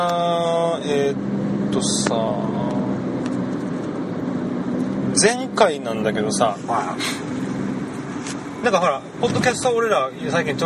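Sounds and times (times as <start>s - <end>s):
speech: 0.0s - 2.8s, 5.2s - 7.3s, 8.6s - 10.6s
car engine hum inside a moving car: 0.0s - 10.6s
road rumble inside a moving car: 0.0s - 10.6s.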